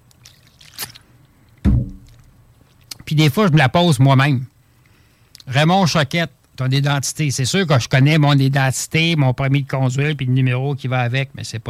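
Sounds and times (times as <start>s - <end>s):
brief wet gulp: 0.2s - 3.0s
person sipping a drink: 0.2s - 3.0s
speech: 3.1s - 4.5s, 5.5s - 11.6s.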